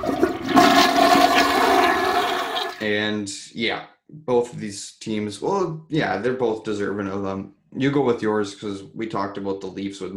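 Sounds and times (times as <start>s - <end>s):
toilet flushing: 0.0s - 2.8s
speech: 2.9s - 10.1s.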